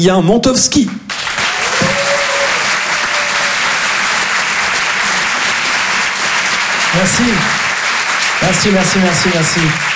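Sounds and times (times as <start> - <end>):
speech: 0.0 - 1.0, 7.0 - 7.6, 8.4 - 9.9
audience at a live stage event applauding and cheering: 1.1 - 9.9
people shouting: 1.5 - 3.8.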